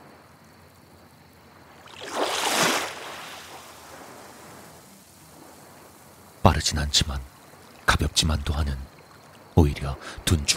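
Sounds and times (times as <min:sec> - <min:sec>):
ocean wave crashing against rocks: 0:01.9 - 0:04.8
speech: 0:06.6 - 0:07.4, 0:08.0 - 0:08.9, 0:09.6 - 0:10.5.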